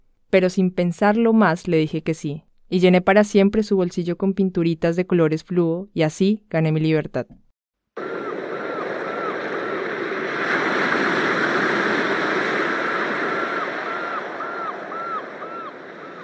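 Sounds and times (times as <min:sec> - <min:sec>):
speech: 0:00.3 - 0:07.4
South Atlantic ocean waves washing against a jetty in Mar del Plata: 0:08.0 - 0:16.2.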